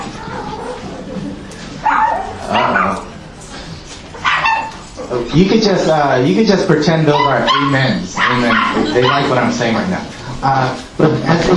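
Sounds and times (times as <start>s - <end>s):
steady hum: 0.0s - 11.5s
dog barking: 1.8s - 3.1s, 4.2s - 4.8s, 7.2s - 9.5s
speech: 5.1s - 11.5s.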